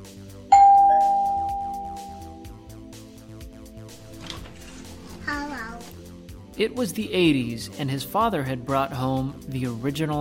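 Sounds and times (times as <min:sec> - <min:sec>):
doorbell chiming at a family home: 0:00.5 - 0:02.5
speech: 0:06.6 - 0:10.1.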